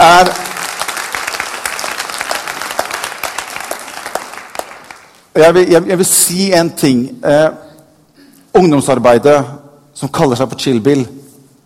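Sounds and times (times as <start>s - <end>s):
crowd applauding: 0.0s - 5.3s
speech: 5.4s - 7.6s, 8.6s - 11.2s.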